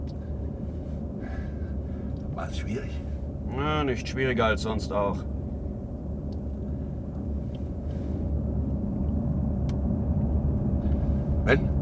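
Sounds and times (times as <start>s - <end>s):
car engine rumble: 0.0s - 11.7s
road noise of a moving car: 0.0s - 11.7s
speech: 2.4s - 5.3s, 11.5s - 11.7s.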